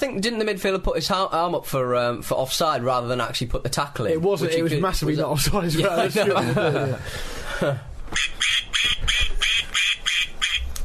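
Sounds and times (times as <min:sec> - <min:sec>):
speech: 0:00.0 - 0:09.2
laughter: 0:05.7 - 0:07.9
duck quacking: 0:08.2 - 0:10.7.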